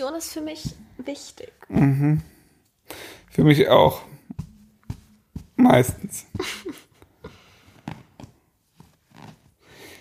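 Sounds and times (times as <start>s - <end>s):
speech: 0.0s - 4.1s, 5.6s - 6.8s
fingers drumming on a hard surface: 0.2s - 2.5s, 3.4s - 6.9s.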